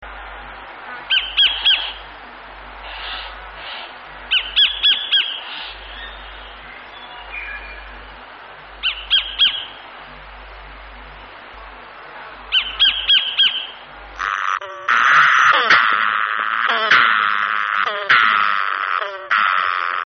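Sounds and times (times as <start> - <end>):
kingfisher bird calls: 1.1 - 2.1, 2.8 - 8.0, 8.8 - 9.8, 12.5 - 20.0.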